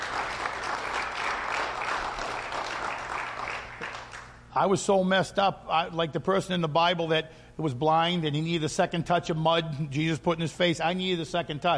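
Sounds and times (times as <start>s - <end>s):
crowd applauding: 0.0s - 4.4s
speech: 4.6s - 11.7s.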